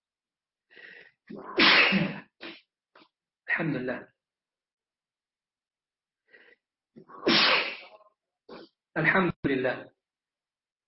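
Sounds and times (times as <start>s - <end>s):
speech: 1.3s - 2.2s, 3.6s - 4.1s, 9.0s - 10.0s
person sneezing in cold rainy weather in Turkey: 1.3s - 2.6s, 7.1s - 8.6s.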